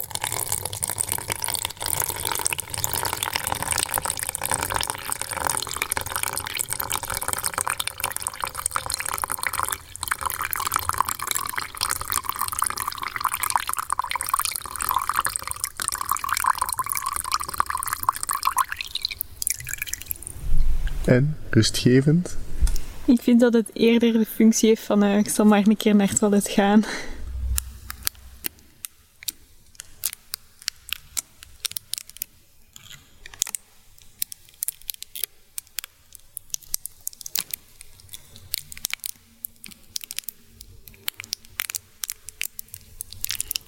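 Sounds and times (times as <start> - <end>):
water pouring from a bottle into a small jar: 0.0 - 20.4, 33.4 - 43.6
speech: 21.1 - 22.4, 23.1 - 27.1.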